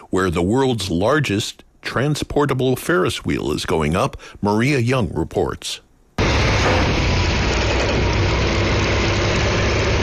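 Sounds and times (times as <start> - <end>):
speech: 0.1 - 5.8
heavy 18-wheeler truck engine idling with a deep rumble: 6.2 - 10.0.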